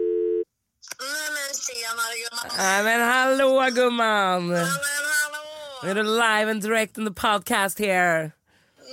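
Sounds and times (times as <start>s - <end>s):
outgoing phone call electronic ringing tone: 0.0s - 0.4s
speech: 1.7s - 5.0s, 5.8s - 8.4s.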